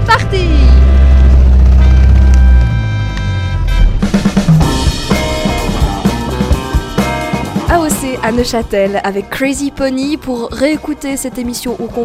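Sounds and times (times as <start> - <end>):
motorboat engine starting and running: 0.0 - 7.0
speech: 8.2 - 12.0.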